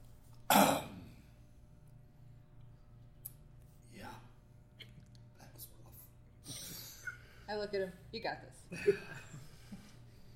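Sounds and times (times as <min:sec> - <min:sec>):
quiet hum: 0:00.0 - 0:10.3
person performing cough and hacking to spit: 0:00.5 - 0:01.2
speech: 0:07.5 - 0:09.3.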